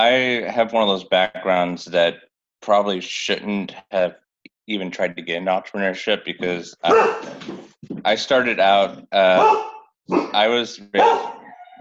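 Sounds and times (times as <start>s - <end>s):
speech: 0.0s - 11.4s
dog barking: 6.9s - 7.4s, 9.4s - 10.4s, 11.0s - 11.5s.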